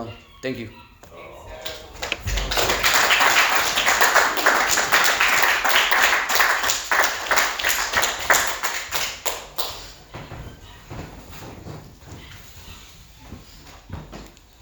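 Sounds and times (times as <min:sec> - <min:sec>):
crowd applauding: 0:01.2 - 0:09.9.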